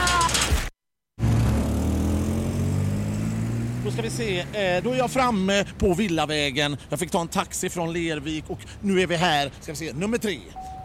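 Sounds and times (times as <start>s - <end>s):
truck driving past on a hilly road: 1.2s - 5.7s
speech: 3.9s - 10.7s.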